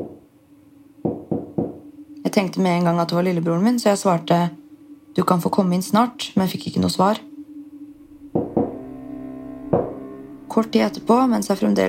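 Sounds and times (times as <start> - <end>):
quiet room hum: 0.0 - 11.8
firm knocks on a door: 1.0 - 1.8
speech: 2.3 - 4.6, 5.2 - 7.3, 10.6 - 11.8.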